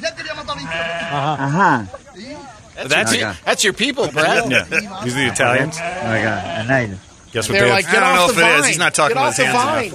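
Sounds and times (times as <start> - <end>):
billy goat bleating near its young kid: 0.5 - 1.6, 5.0 - 6.8
speech: 0.6 - 2.0, 2.8 - 9.9
laughter: 2.8 - 5.8.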